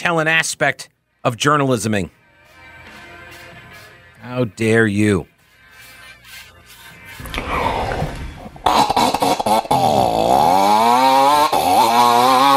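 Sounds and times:
speech: 0:00.0 - 0:02.2, 0:04.2 - 0:05.3
man vocally imitating a two-stroke chainsaw engine: 0:08.6 - 0:12.5.

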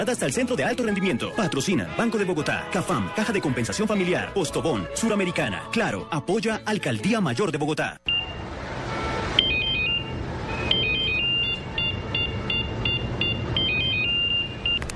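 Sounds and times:
speech: 0:00.0 - 0:08.1
mobile phone ringtone playing an electronic melody: 0:09.4 - 0:14.8.

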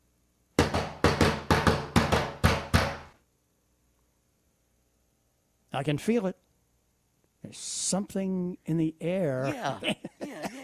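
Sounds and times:
sharp knocks in a drum-like rhythm: 0:00.6 - 0:03.2
speech: 0:05.8 - 0:06.4, 0:07.4 - 0:10.6
laughter: 0:09.5 - 0:10.6.

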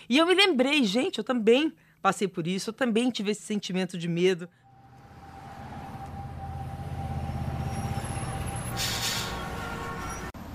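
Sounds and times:
speech: 0:00.1 - 0:04.6
loud engine rumble from a bus or truck: 0:04.6 - 0:10.4
busy downtown street traffic in central Rio de Janeiro: 0:04.6 - 0:10.5
bus air brakes releasing with a sharp hiss: 0:05.8 - 0:10.3.

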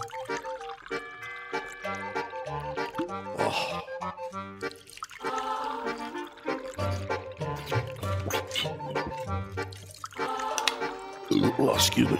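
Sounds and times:
water pouring from a large jug: 0:00.0 - 0:12.1
speech: 0:11.5 - 0:12.1.

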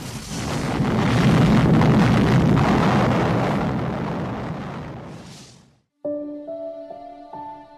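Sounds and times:
atomic bomb explosion with deep rumbling blast: 0:00.0 - 0:05.8
soft sustained musical tones: 0:06.0 - 0:07.7.

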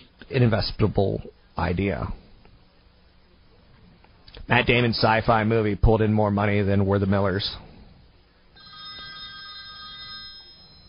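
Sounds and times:
speech: 0:00.3 - 0:02.2, 0:04.5 - 0:07.6
telephone ringing with a bright electronic tone: 0:08.6 - 0:10.8.

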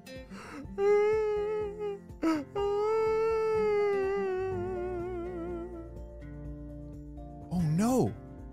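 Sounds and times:
voice imitating a giant whale's mournful crying call: 0:00.7 - 0:06.0.

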